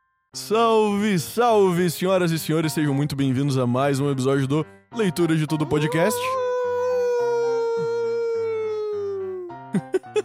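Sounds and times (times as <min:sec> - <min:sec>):
speech: 0:00.4 - 0:06.4
person imitating a wolf howl: 0:05.7 - 0:09.6
laughter: 0:09.8 - 0:10.2.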